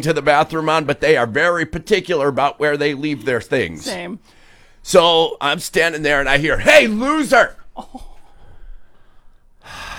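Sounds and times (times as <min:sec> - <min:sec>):
speech: 0:00.0 - 0:08.1
person taking a sharp deep breath: 0:04.2 - 0:04.8, 0:08.2 - 0:09.9
uneven breathy noise: 0:08.0 - 0:09.9.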